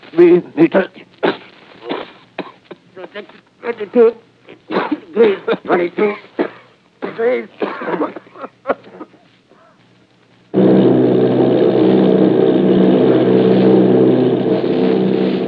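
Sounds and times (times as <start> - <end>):
speech: 0.1 - 1.1, 3.0 - 6.3, 7.2 - 8.8
laughter: 4.7 - 6.3, 7.7 - 9.3
loud bomber plane engines droning: 10.5 - 15.4.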